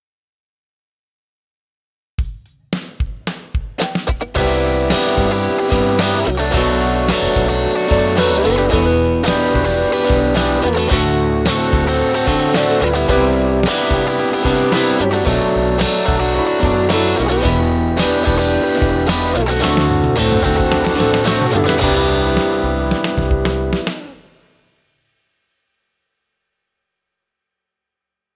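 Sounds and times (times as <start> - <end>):
overdriven guitar dry mix through multi-effects processor: 3.8 - 24.3.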